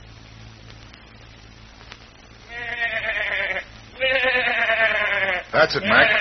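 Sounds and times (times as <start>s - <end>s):
goat bleating: 2.5s - 6.1s
speech: 5.6s - 6.1s.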